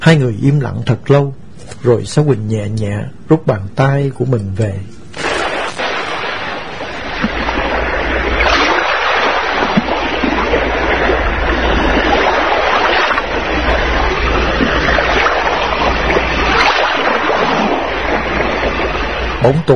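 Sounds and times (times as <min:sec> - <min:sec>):
speech: 0:00.0 - 0:05.2, 0:19.4 - 0:19.7
waves crashing and surging: 0:05.2 - 0:19.7
low rumble: 0:05.4 - 0:19.4
gusty wind: 0:05.4 - 0:19.5.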